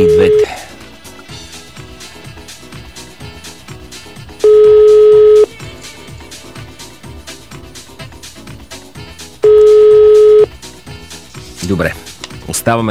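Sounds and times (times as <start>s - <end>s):
telephone ringback tone, call unanswered: 0.0s - 0.5s, 4.4s - 5.5s, 9.4s - 10.5s
low rhythmic background: 0.0s - 12.8s
speech: 12.7s - 12.8s.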